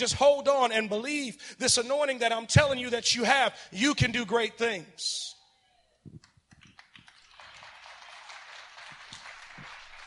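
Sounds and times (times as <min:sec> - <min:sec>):
speech: 0:00.0 - 0:05.4
small audience clapping: 0:06.2 - 0:10.0.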